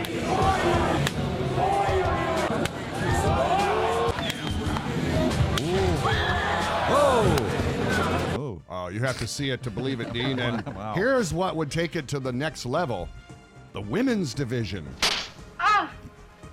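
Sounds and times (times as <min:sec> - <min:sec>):
rowdy crowd shouting and cheering: 0:00.0 - 0:08.4
open-hand face slaps: 0:01.0 - 0:01.2, 0:02.6 - 0:02.8, 0:15.0 - 0:15.4
speech: 0:08.9 - 0:13.2, 0:13.8 - 0:15.1
laughter: 0:09.6 - 0:11.1.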